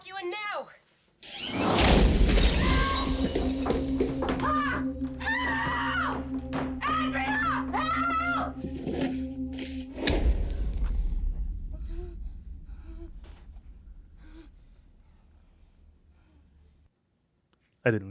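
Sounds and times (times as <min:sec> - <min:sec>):
rumbling swells in a horror film trailer: 0:01.8 - 0:16.6
low steady droning horror film trailer score: 0:01.8 - 0:16.7
woman screaming and whimpering in panic in a horror film trailer: 0:02.5 - 0:08.6.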